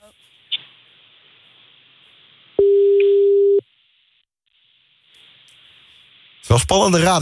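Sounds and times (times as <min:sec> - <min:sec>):
faint hiss: 0:00.0 - 0:02.6, 0:03.7 - 0:07.1
telephone tone while a call is placed: 0:02.6 - 0:03.6
speech: 0:06.5 - 0:07.1.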